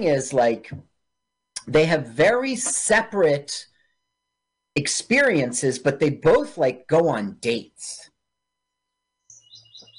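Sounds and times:
speech: 0.0 - 0.9, 1.6 - 3.7, 4.8 - 8.1
low steady hum of room noise: 0.0 - 9.9
birds chirping outdoors through open windows: 9.2 - 9.9.

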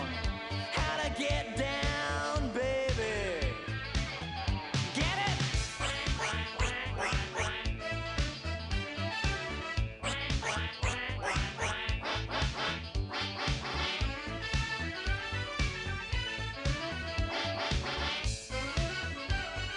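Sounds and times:
dense driving musical backing: 0.0 - 19.7
duck quacking: 5.6 - 8.2, 10.0 - 14.4.

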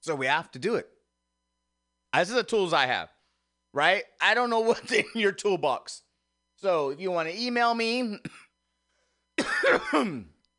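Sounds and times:
speech: 0.0 - 1.0, 2.1 - 6.0, 6.6 - 8.4, 9.4 - 10.3
harsh cough: 8.2 - 8.6, 9.4 - 10.4.

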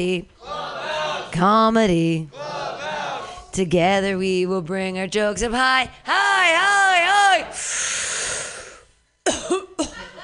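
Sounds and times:
speech: 0.0 - 0.6, 1.3 - 2.4, 3.6 - 7.9
long breathy hiss: 7.5 - 9.0
sharp raspy coughs after using a new vaporizer: 9.2 - 10.1.

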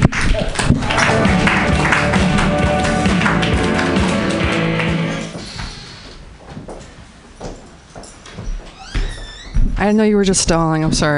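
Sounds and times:
crowd applause for a performer being introduced: 0.1 - 5.6
crowd cheering for a performer being introduced: 0.5 - 5.6
speech: 9.9 - 11.1.

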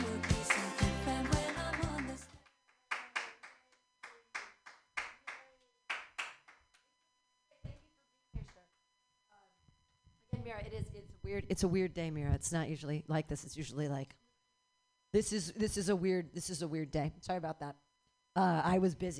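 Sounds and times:
dense audience applause thinning into slow separate claps: 0.0 - 6.6
speech: 10.4 - 14.2, 15.1 - 17.8, 18.4 - 19.1.

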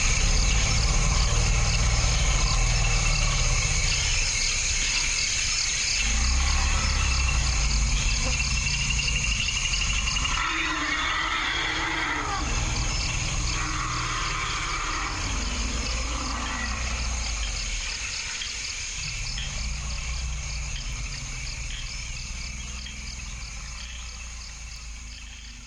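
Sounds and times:
dense chorus of crickets chirping: 0.0 - 25.6
elephants rumbling low in forest habitat: 0.0 - 25.6.

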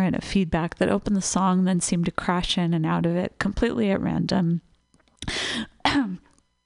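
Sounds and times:
speech: 0.1 - 6.2
coughing: 5.5 - 6.3.

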